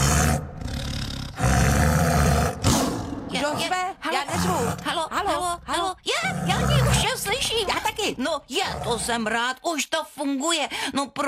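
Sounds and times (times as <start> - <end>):
tiger roaring: 0.0 - 8.0, 8.6 - 9.2
speech: 8.1 - 11.2.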